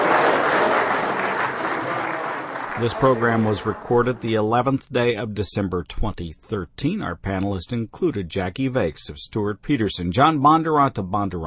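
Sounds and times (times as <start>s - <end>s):
audience applause closing a panel program: 0.0s - 4.2s
speech: 2.8s - 11.4s.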